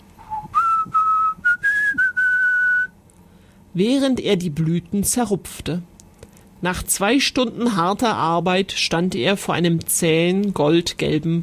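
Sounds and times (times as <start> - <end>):
man whistling a song while working: 0.2 - 2.9
breaths between whistled phrases: 3.2 - 3.7
speech: 3.8 - 5.9, 6.6 - 11.4.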